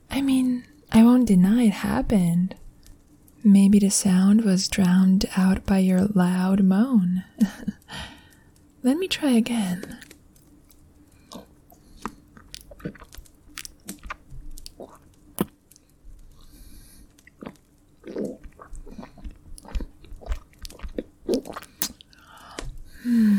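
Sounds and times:
speech: 0.2s - 2.6s, 3.4s - 8.1s, 8.8s - 10.1s
wet tongue licking and slurping mouth sounds: 11.3s - 15.5s, 17.2s - 22.7s.

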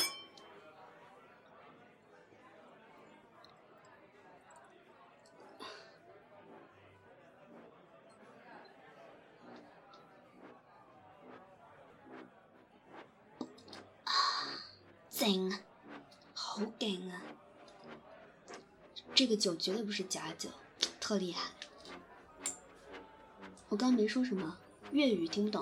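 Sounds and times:
glasses clinking together in a toast: 0.0s - 0.5s
murmur of chatter: 0.0s - 25.5s
speech: 15.2s - 15.6s, 16.8s - 17.4s, 19.2s - 21.6s, 23.7s - 25.5s.

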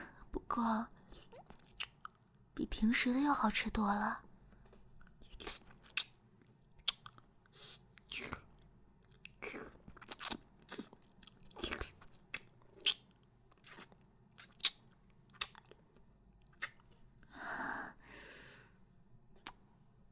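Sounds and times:
speech: 0.6s - 1.0s, 2.6s - 4.3s
person chewing a meat bun: 1.1s - 2.4s, 4.6s - 17.1s.

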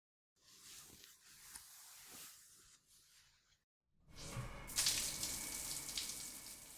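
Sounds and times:
water running during a bath with soap: 4.2s - 6.7s.

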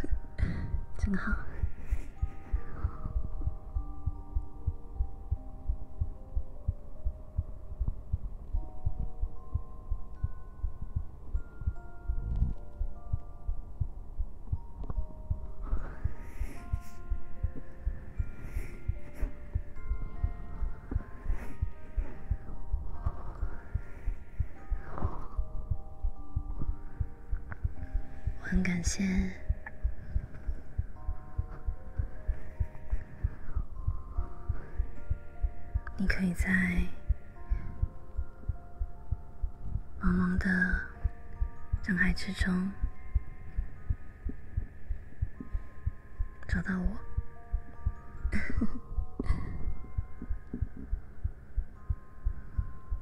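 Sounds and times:
soft sustained tones: 0.0s - 53.0s
speech: 1.0s - 1.5s, 28.9s - 29.5s, 36.1s - 37.0s, 42.0s - 42.8s, 46.6s - 47.0s
steady fast heartbeat thumping: 2.5s - 16.2s, 18.9s - 34.6s, 48.2s - 53.0s.

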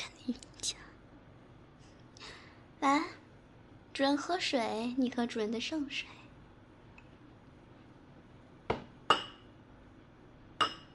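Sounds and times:
speech: 0.3s - 0.5s, 2.8s - 3.2s, 4.0s - 6.2s
cups clinking together in a toast: 8.7s - 9.5s, 10.6s - 10.9s.

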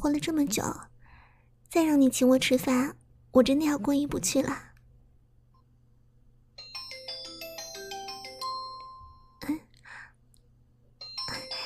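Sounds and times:
speech: 0.0s - 0.9s, 1.7s - 4.7s
phone ringing with a bright electronic melody: 6.6s - 9.4s, 11.0s - 11.6s.

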